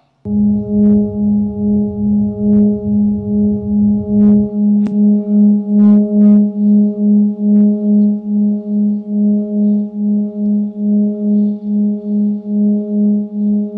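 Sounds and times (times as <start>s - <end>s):
sonified recording of a star, humming electronic drone with layered tones: 0.3s - 13.7s.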